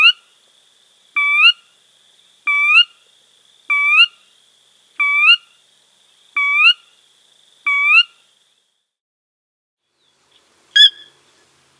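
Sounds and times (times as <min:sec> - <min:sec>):
sora calling with clear rising whistled notes: 0:00.0 - 0:08.7, 0:10.1 - 0:11.4.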